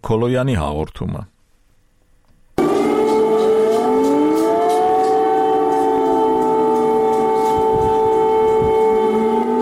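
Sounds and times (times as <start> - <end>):
speech: 0.0 - 1.3
air raid siren sounding over the city of Kyiv: 2.6 - 9.6.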